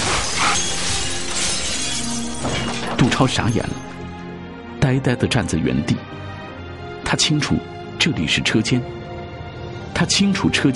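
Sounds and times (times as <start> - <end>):
glass window shattering as a person crashes through it: 0.0 - 4.0
speech: 3.0 - 3.9, 4.9 - 6.2, 7.1 - 9.0, 10.0 - 10.7.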